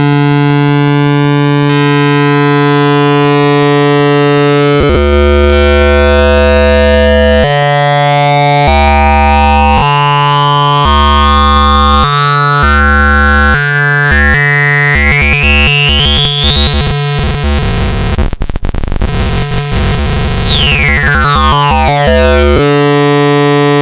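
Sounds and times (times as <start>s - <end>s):
electronic pulser pulses: 0.2s - 23.8s.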